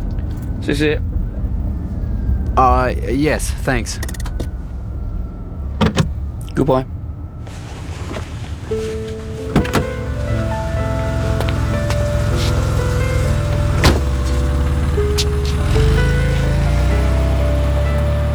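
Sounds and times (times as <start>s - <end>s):
big car engine rumbling as it pulls off: 0.0s - 18.3s
speech: 0.7s - 1.2s, 2.6s - 4.2s, 6.6s - 7.0s
car doors shutting: 3.6s - 4.7s, 5.7s - 6.7s, 7.4s - 18.3s.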